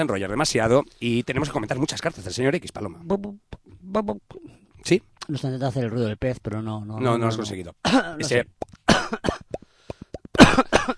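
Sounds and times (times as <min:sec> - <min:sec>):
speech: 0:00.0 - 0:09.5
person coughing harshly: 0:08.9 - 0:09.5, 0:10.4 - 0:10.9.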